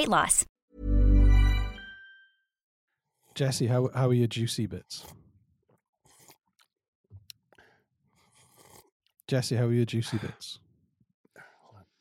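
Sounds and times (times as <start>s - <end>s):
speech: 0.0s - 0.5s, 3.4s - 5.2s, 9.3s - 10.6s
wet smacking slurping: 5.0s - 9.2s.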